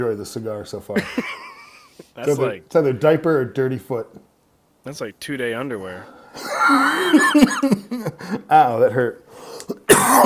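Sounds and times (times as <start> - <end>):
speech: 0.0 - 1.5, 2.2 - 9.2, 10.1 - 10.2
laughter: 1.0 - 2.4, 6.4 - 8.5
person coughing into a microphone: 9.7 - 10.2.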